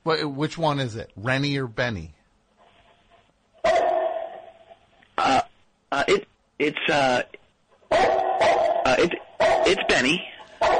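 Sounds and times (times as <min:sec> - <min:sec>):
speech: 0:00.0 - 0:02.2, 0:05.2 - 0:10.7
person imitating a dog barking: 0:07.9 - 0:10.7.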